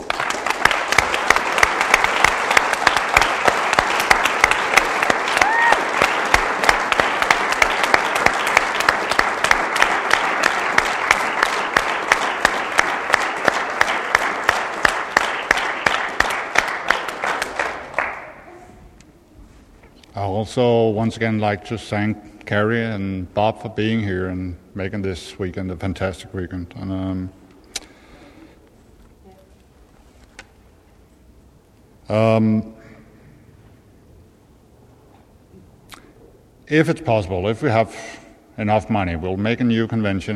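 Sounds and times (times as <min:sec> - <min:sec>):
large audience applauding: 0:00.0 - 0:18.5
speech: 0:20.4 - 0:27.4, 0:32.1 - 0:32.8, 0:36.7 - 0:40.3.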